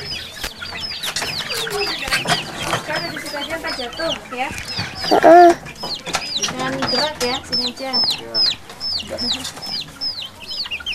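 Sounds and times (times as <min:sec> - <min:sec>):
people talking softly: 0:00.0 - 0:10.5
flock of chickens clucking: 0:00.0 - 0:10.9
chicken squawk: 0:03.5 - 0:05.8.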